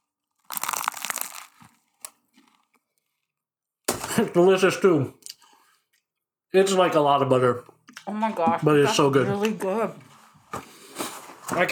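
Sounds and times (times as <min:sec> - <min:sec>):
soft crumbly chewing of pastry: 0:00.2 - 0:03.2
biting into a buttery kouign-amann pastry: 0:00.3 - 0:02.8
speech: 0:04.2 - 0:05.2, 0:06.5 - 0:10.1, 0:11.5 - 0:11.6.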